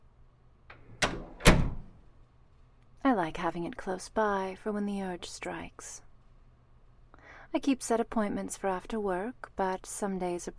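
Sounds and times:
playroom door latch click: 0.7s - 2.0s
speech: 3.2s - 6.0s, 7.5s - 10.5s.

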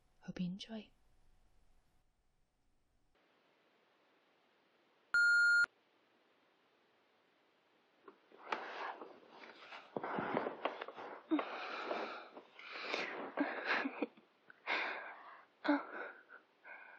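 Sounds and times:
speech: 0.3s - 1.0s
voicemail beep: 5.2s - 5.7s
breathy rustling sounds: 8.3s - 16.9s.

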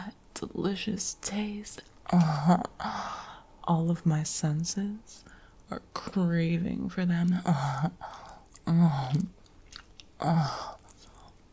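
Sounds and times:
speech: 0.4s - 9.4s, 10.2s - 10.7s
wet slobbery licking and chewing of food: 8.0s - 11.4s.

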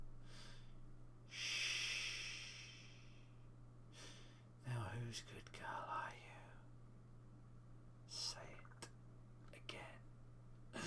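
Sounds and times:
breathing: 0.2s - 4.6s
speech: 5.0s - 6.3s.

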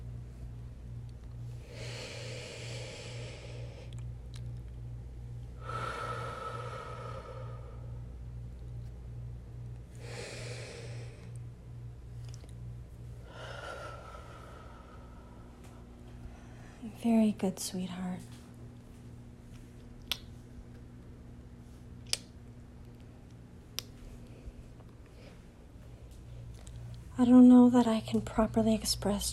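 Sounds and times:
steady low hum: 0.0s - 29.3s
deep breaths: 1.5s - 4.0s, 5.6s - 8.1s, 10.0s - 11.4s, 13.2s - 16.8s
speech: 17.0s - 18.4s, 27.2s - 29.3s.

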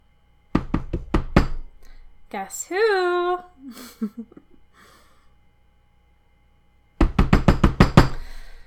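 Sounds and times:
hard knocks on a door: 0.5s - 1.7s, 7.0s - 8.2s
speech: 2.3s - 4.5s
person sighing with a breath: 3.6s - 5.3s, 8.1s - 8.6s.

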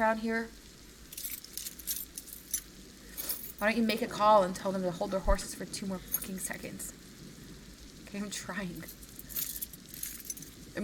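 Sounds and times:
speech: 0.0s - 0.6s, 3.6s - 7.0s, 8.1s - 9.0s
keys jangling: 1.1s - 3.6s, 8.9s - 10.6s.

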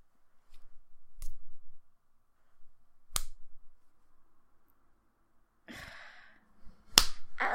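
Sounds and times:
sharp slaps on a person's skin: 3.1s - 3.4s, 6.9s - 7.3s.

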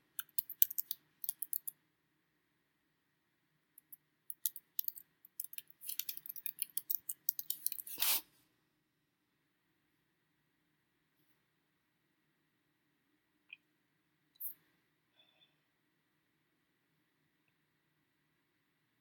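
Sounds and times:
keyboard typing with crisp clicky keystrokes: 0.0s - 1.7s, 3.8s - 8.0s.

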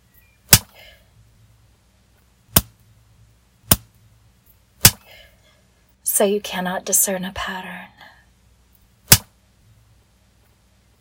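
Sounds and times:
rubber band snapped against skin: 2.5s - 2.8s, 3.7s - 3.9s, 9.1s - 9.3s
speech: 6.2s - 7.9s
hand slapping a thigh: 9.1s - 9.3s.

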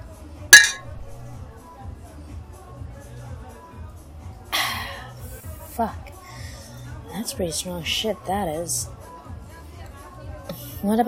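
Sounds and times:
low murmur of chatter: 0.0s - 11.0s
glasses clinking in a toast: 0.6s - 1.4s
speech: 5.8s - 6.1s, 7.2s - 9.0s, 10.8s - 11.0s.

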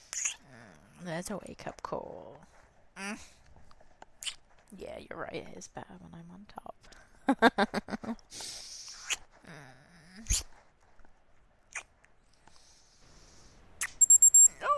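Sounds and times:
speech: 1.0s - 3.4s, 4.7s - 8.7s, 9.5s - 10.5s
soft rustling: 1.3s - 6.0s, 10.3s - 12.6s
sharp high-pitched electronic alarm beeps: 14.0s - 14.6s.

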